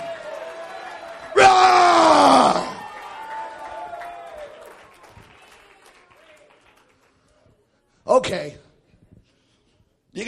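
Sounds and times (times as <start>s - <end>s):
church audience collective shout: 0.0s - 3.9s
church audience clapping: 0.0s - 7.5s.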